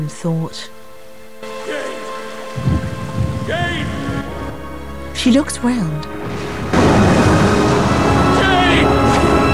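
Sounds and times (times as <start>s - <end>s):
speech: 0.0s - 0.8s, 3.5s - 4.0s, 5.2s - 7.2s, 8.7s - 9.4s
waterfall on moorland rippling over a cluster of rocks: 6.6s - 9.4s.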